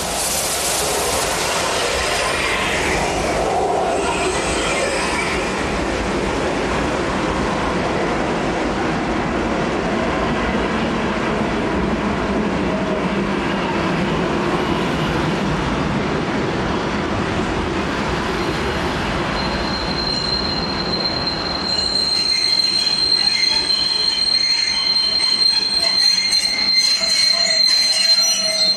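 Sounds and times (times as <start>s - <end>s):
steam express train departing: 0.0s - 28.7s
steam express train wheels squealing: 19.4s - 28.7s.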